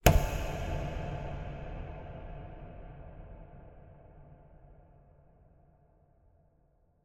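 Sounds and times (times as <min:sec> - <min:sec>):
suspense horror cinematic hit with reverb: 0:00.0 - 0:04.5.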